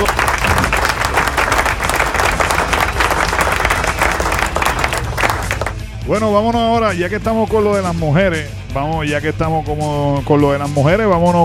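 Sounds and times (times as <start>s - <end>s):
applause in a studio: 0.0s - 5.8s
speech: 6.1s - 11.4s.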